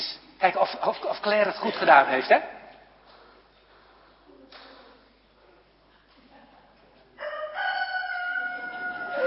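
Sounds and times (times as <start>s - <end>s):
speech: 0.4s - 2.6s
child imitating a rooster crowing: 7.2s - 9.2s.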